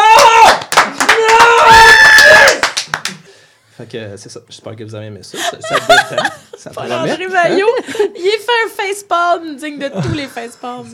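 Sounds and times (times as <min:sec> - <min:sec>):
audience applause: 0:00.1 - 0:03.2
speech: 0:03.9 - 0:10.9
laughter: 0:05.4 - 0:08.2, 0:09.9 - 0:10.9.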